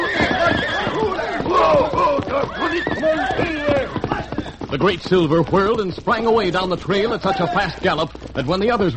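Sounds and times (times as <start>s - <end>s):
several frightened horses whinnying and neighing: 0.0s - 4.9s, 7.0s - 7.9s
faint hoof clatter of horses: 0.0s - 8.9s
speech: 4.8s - 8.9s.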